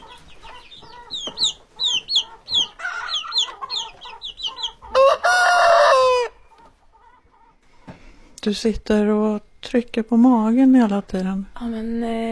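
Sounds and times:
chickens clucking: 0.0s - 8.3s
rooster crowing: 4.6s - 6.4s
speech: 8.4s - 12.2s.

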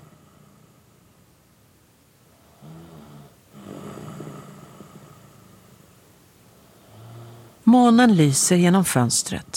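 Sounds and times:
man snoring while asleep: 0.0s - 1.0s, 2.4s - 5.8s, 6.6s - 7.6s
low hiss: 0.0s - 9.5s
speech: 7.7s - 9.5s.

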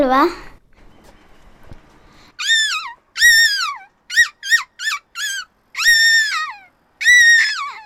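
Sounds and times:
speech: 0.0s - 0.5s
child imitating a seagull call: 2.4s - 7.8s.

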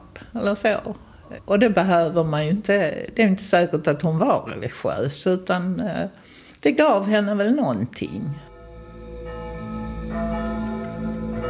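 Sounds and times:
speech: 0.4s - 8.5s
church bells ringing: 8.4s - 11.4s.

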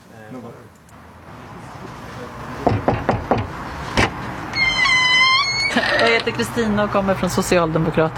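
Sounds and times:
faint noise: 0.0s - 8.1s
speech: 0.3s - 0.8s, 5.8s - 8.1s
sharp knocks on a front door: 2.6s - 4.2s.

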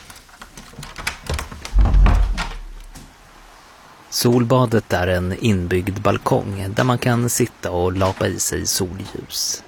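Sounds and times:
door rattling and clunking as it is handled and opened: 0.7s - 3.2s
speech: 4.2s - 9.6s.

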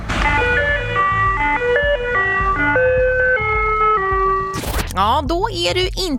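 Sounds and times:
ice cream truck in Malmö playing its classic electronic jingle: 0.1s - 4.6s
speech: 5.0s - 6.1s.

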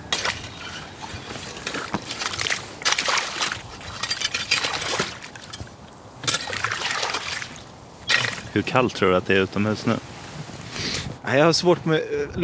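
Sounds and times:
bright crackly splashing as slush is stirred: 0.0s - 10.2s
slushy ice water sloshing and trickling in a hole cut in the ice: 0.0s - 10.2s
slushy ice water gurgling: 1.0s - 9.4s
speech: 8.6s - 10.1s, 11.3s - 12.4s.

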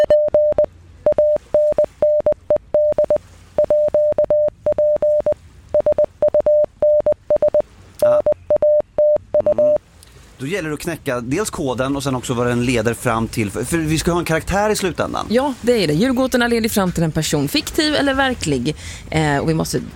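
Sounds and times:
morse code beeps: 0.0s - 9.8s
speech: 10.4s - 19.9s.

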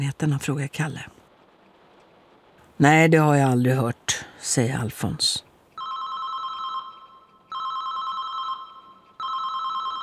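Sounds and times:
speech: 0.0s - 1.2s, 2.8s - 5.5s
mobile phone ringing in a stairwell: 5.8s - 10.0s.

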